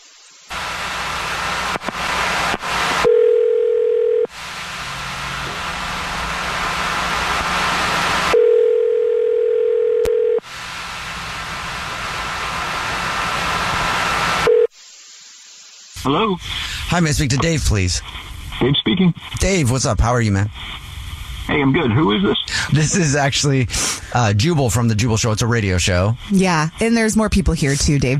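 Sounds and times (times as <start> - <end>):
loud continuous hiss: 0.0 - 9.4, 10.2 - 28.1
telephone ringback tone while placing a call: 3.1 - 4.3, 8.4 - 10.4
speech: 16.1 - 20.8, 21.5 - 28.1.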